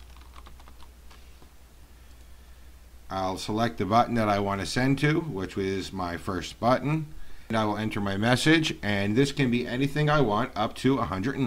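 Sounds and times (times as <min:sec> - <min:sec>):
typing on a computer keyboard: 0:00.0 - 0:00.9
speech: 0:03.1 - 0:11.4.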